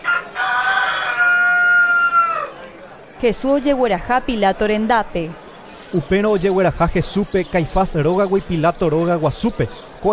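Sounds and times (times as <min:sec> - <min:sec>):
rooster crowing: 0:00.0 - 0:02.6
speech: 0:03.2 - 0:10.1.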